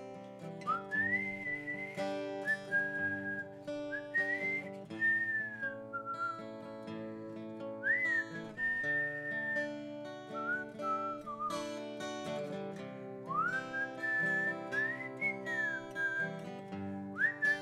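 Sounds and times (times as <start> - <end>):
person whistling a lilting song melody: 0.6 - 12.5, 13.2 - 17.6.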